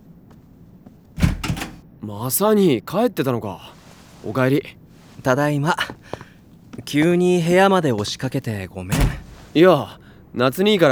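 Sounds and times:
door opening: 0:01.2 - 0:01.8, 0:08.9 - 0:10.3
speech: 0:02.0 - 0:06.2, 0:06.8 - 0:10.9.

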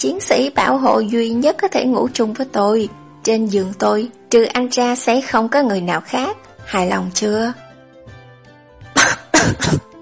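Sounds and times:
speech: 0:00.0 - 0:07.6, 0:09.0 - 0:09.9
person coughing after choking on saliva: 0:08.9 - 0:09.9.

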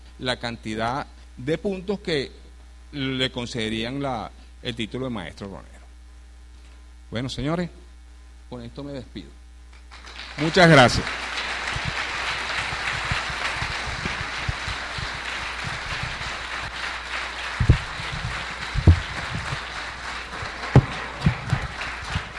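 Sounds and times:
speech: 0:00.2 - 0:05.8, 0:07.1 - 0:07.8, 0:08.5 - 0:11.2
audience applause at an international distillates conference: 0:09.9 - 0:22.3.

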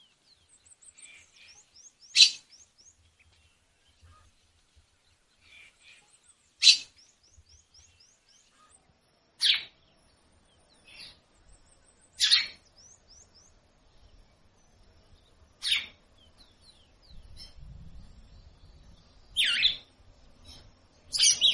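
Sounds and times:
female Red-cowled cardinal raspy calls: 0:01.0 - 0:02.5, 0:05.4 - 0:07.0, 0:12.2 - 0:12.6, 0:15.6 - 0:16.0, 0:21.1 - 0:21.5.

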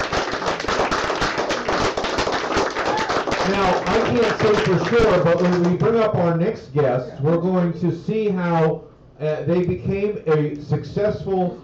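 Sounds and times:
studio audience applause on a television talk show: 0:00.0 - 0:05.8
speech: 0:03.5 - 0:11.6.

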